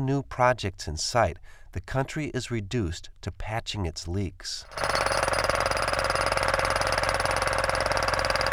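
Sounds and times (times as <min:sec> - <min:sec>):
speech: 0:00.0 - 0:05.4
jackhammers breaking up a residential street in Amman: 0:04.7 - 0:08.5.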